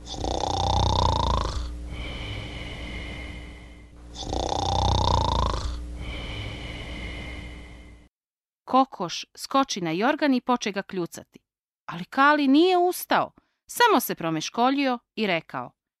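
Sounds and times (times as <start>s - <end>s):
rasping whistly snores from someone asleep under a quilt: 0.0s - 7.7s
speech: 8.7s - 15.8s.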